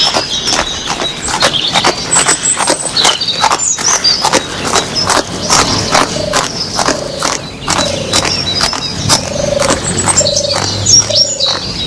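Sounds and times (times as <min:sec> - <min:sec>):
ridden horses galloping away: 0:00.0 - 0:11.7
birds chirping faintly: 0:00.0 - 0:11.8.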